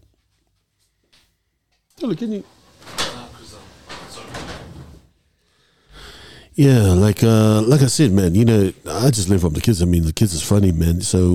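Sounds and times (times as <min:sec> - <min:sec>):
speech: 0:02.0 - 0:02.6, 0:06.6 - 0:11.3
door rolling and scraping as it is pulled shut: 0:02.4 - 0:05.1.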